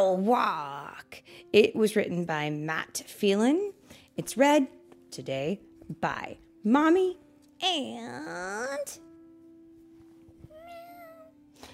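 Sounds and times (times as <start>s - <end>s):
speech: 0.0s - 9.0s
child imitating a kitten meowing: 10.6s - 11.3s.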